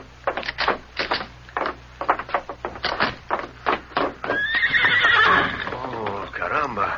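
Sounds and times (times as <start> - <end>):
horse hooves clip-clopping: 0.0 - 6.7
white horse whinnying: 4.2 - 6.4.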